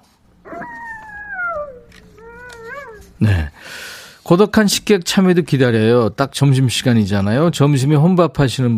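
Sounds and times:
fox howling cry: 0.4s - 3.6s
speech: 3.2s - 8.7s.

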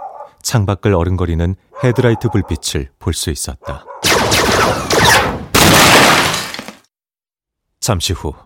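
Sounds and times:
speech: 0.4s - 3.9s, 4.6s - 5.2s, 7.9s - 8.4s
gunfire bursts: 4.0s - 6.7s
door being smashed in: 4.1s - 6.8s.

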